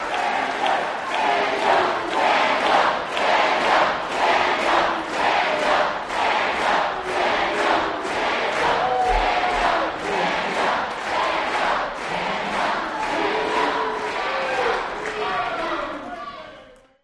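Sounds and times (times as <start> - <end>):
crowd chanting: 0.0 - 16.8.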